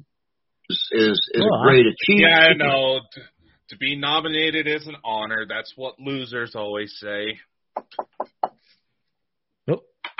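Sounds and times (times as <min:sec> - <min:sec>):
speech: 0:00.7 - 0:08.2, 0:09.7 - 0:09.9
person's voice: 0:00.7 - 0:08.5
knocking on a wooden surface: 0:07.8 - 0:08.5.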